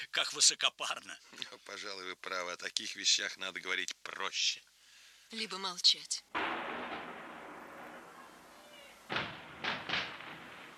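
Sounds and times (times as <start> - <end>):
speech: 0.0 - 6.6
fireworks bursting overhead in the rain: 6.3 - 10.7
steady hiss of falling rain: 6.4 - 10.7.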